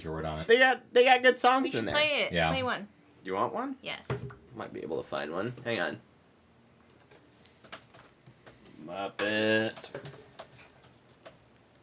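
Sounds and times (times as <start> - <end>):
speech: 0.0 - 6.1, 8.8 - 10.2
typing on a computer keyboard with plastic key clicks: 6.9 - 11.6.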